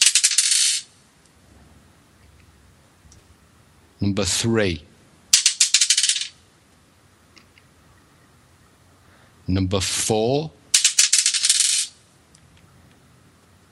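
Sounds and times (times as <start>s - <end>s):
dice thrown clattering across a hard surface: 0.0s - 0.9s, 5.4s - 6.4s, 10.8s - 11.9s
speech: 4.0s - 4.9s, 9.5s - 10.6s.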